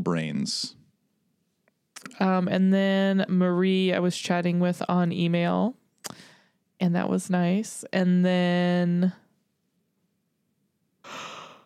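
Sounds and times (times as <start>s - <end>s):
speech: 0.0s - 0.8s, 2.2s - 6.2s, 6.8s - 9.2s
person yawning: 11.0s - 11.6s.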